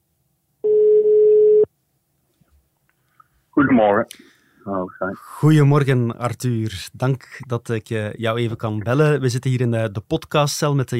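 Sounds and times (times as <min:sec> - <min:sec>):
telephone ringback tone while placing a call: 0:00.6 - 0:01.7
speech: 0:03.6 - 0:10.9.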